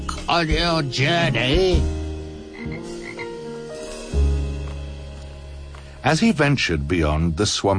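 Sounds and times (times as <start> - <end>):
speech: 0.3 - 2.0, 6.0 - 7.7
frog croaking: 2.5 - 3.4.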